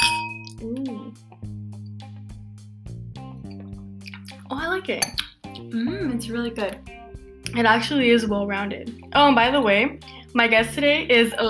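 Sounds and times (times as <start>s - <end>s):
wine glasses of Moscato clinking in a toast: 0.0s - 0.6s
speech: 4.5s - 6.9s, 7.5s - 11.4s.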